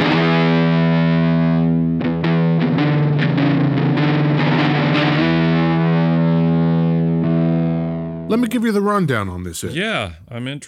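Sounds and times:
distorted electric guitar with three pickups: 0.0s - 8.3s
speech: 8.4s - 10.6s.

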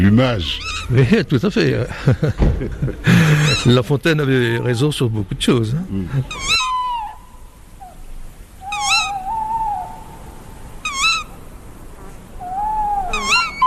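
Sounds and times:
owl hooting: 0.0s - 1.0s, 3.4s - 5.2s, 6.1s - 13.6s
speech: 0.0s - 6.6s
faint night ambience: 0.0s - 13.6s
laughter: 1.8s - 4.0s.

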